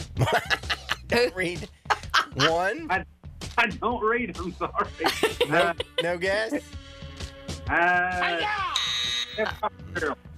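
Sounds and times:
laughter: 0.2 - 1.2, 1.9 - 2.8, 5.0 - 6.5, 9.4 - 9.7
speech: 0.2 - 1.8, 2.4 - 6.8, 7.7 - 8.7, 9.4 - 10.3
quiz-show time-up buzzer blaring: 8.7 - 9.6.

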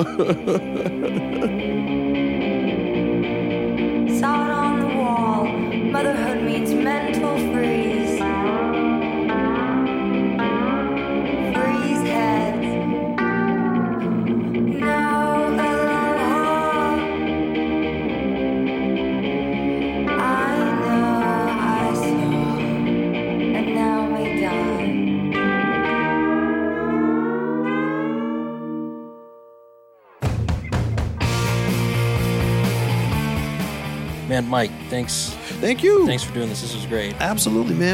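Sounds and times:
speech: 0.0 - 1.6, 34.4 - 37.9
laughter: 0.0 - 1.8
distorted chorus-washed guitars: 0.0 - 29.1, 30.0 - 37.9
woman singing: 4.1 - 8.9, 11.4 - 13.0, 14.7 - 17.2, 19.8 - 22.9, 23.5 - 25.0.

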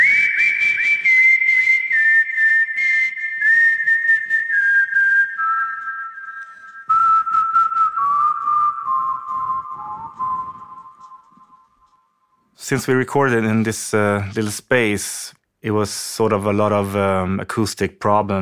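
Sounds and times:
steady rhythmic beat: 0.0 - 11.7
person whistling a clear loud melody: 0.0 - 12.1
speech: 12.7 - 18.3.

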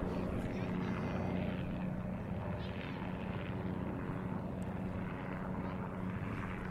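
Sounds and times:
faint voices: 0.0 - 3.6
tour helicopter flying overhead: 0.0 - 6.6.

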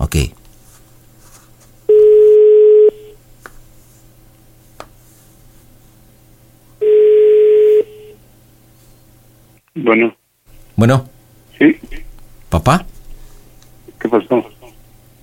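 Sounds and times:
speech: 0.2 - 0.4, 9.8 - 10.2, 10.8 - 12.9, 14.0 - 14.5
telephone call tones while a call is placed: 1.9 - 3.2, 6.8 - 8.2.

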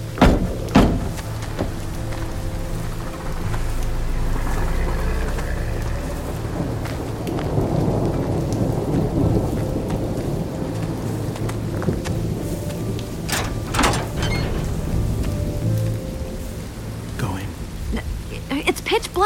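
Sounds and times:
deep thunder rumbling and rolling: 0.0 - 19.2
steady heavy rain in a thunderstorm: 0.0 - 19.2.

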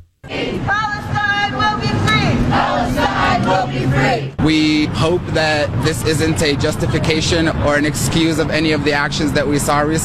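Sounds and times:
large crowd chanting and shouting at a pro-Hamas rally in downtown Tucson: 0.2 - 4.5
speech: 4.5 - 10.0.

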